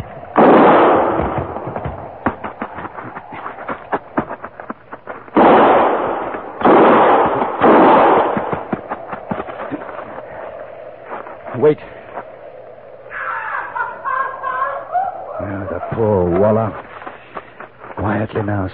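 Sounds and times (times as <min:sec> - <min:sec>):
heavy booming gun blasts in an armed standoff: 0:00.0 - 0:02.1, 0:05.3 - 0:08.8
sharp gunshot cracks in an armed standoff: 0:00.3 - 0:01.9, 0:05.3 - 0:08.9
laughter: 0:13.1 - 0:16.8
speech: 0:18.4 - 0:18.7.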